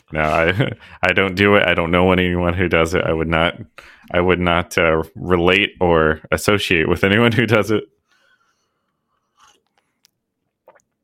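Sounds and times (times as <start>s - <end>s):
speech: 0.1s - 8.0s
sipping a drink: 8.9s - 11.0s.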